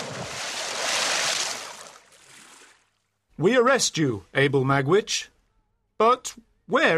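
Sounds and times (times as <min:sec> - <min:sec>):
sea waves surging as a ship passes: 0:00.0 - 0:02.7
speech: 0:03.4 - 0:05.3, 0:06.0 - 0:06.9.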